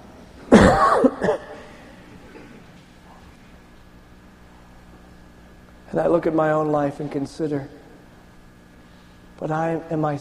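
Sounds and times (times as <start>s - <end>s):
person coughing: 0.5s - 2.7s
speech: 6.0s - 7.8s, 9.4s - 10.1s.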